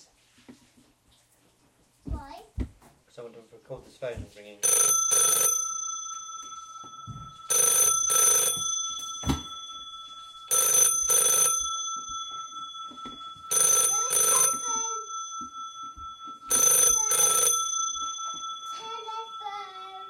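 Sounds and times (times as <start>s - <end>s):
child speaking: 2.1s - 2.6s, 13.9s - 15.1s
telephone bell ringing: 4.6s - 20.0s.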